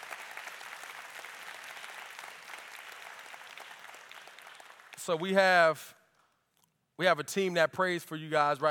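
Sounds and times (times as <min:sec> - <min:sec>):
large audience clapping at a church service: 0:00.0 - 0:05.7
speech: 0:05.0 - 0:06.0, 0:07.0 - 0:08.6.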